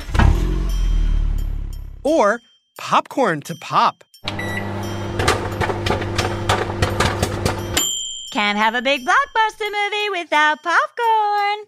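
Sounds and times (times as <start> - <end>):
car engine starting and revving: 0.0 - 2.0, 4.3 - 7.8
speech: 2.0 - 4.1, 8.4 - 11.6.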